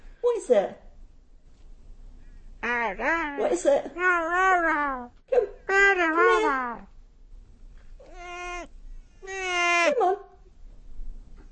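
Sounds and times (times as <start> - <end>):
speech: 0.4 - 0.8, 2.9 - 6.9
cat meowing: 8.0 - 10.0.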